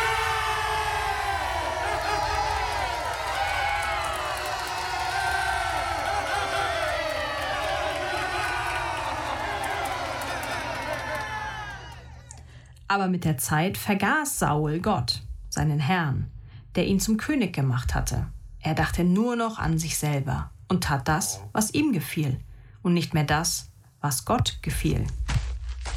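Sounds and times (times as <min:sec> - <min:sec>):
large crowd cheering and shouting: 0:00.0 - 0:12.4
speech: 0:12.9 - 0:25.2.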